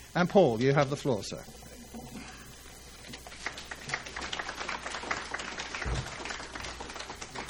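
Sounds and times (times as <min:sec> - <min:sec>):
speech: 0:00.2 - 0:01.7
crowd applauding in a large room: 0:03.3 - 0:07.4.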